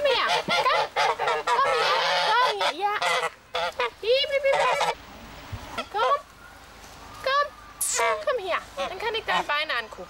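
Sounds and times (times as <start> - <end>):
geese honking: 0.0 - 5.0, 7.9 - 10.0.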